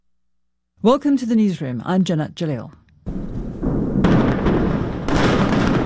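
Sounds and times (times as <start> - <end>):
speech: 0.8 - 2.8
massive explosions demolishing an underground tunnel network: 3.1 - 5.8.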